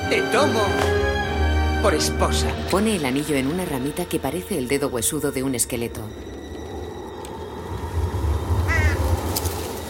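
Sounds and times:
speech: 0:00.1 - 0:01.0, 0:01.8 - 0:06.4
low steady rumbling outdoor ambience: 0:02.6 - 0:09.8
crow cawing harshly: 0:08.7 - 0:09.1.

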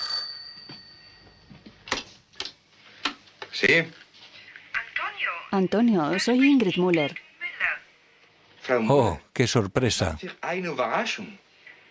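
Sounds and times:
bright electric telephone ring: 0:00.0 - 0:01.2
speech: 0:03.6 - 0:04.0, 0:05.5 - 0:07.2, 0:08.7 - 0:11.4.

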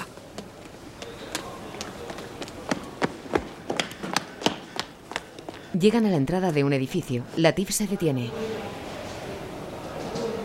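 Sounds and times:
footsteps of two men going down stairs into an alley: 0:00.0 - 0:05.7
speech: 0:05.8 - 0:08.8.

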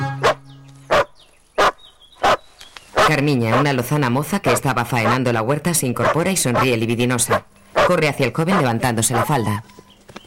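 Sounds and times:
dog barking: 0:00.2 - 0:02.4, 0:03.0 - 0:03.7, 0:06.0 - 0:09.5
speech: 0:03.1 - 0:09.8.

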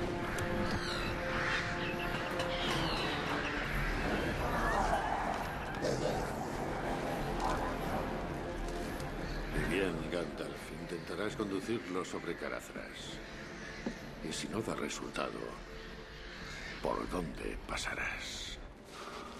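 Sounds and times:
flock of black birds cawing: 0:00.0 - 0:18.2
speech: 0:11.1 - 0:13.5, 0:14.3 - 0:15.9, 0:16.8 - 0:18.5.

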